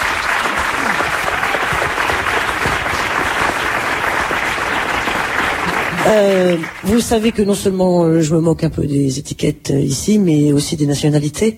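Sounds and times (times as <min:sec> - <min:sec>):
audience applause: 0:00.0 - 0:07.4
speech: 0:06.1 - 0:11.5.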